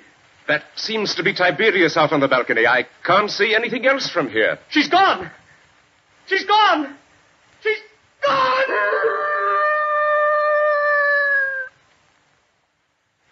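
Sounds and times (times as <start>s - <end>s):
speech: 0.5s - 5.4s, 6.3s - 7.0s, 7.6s - 8.9s
dog howling: 8.3s - 11.7s.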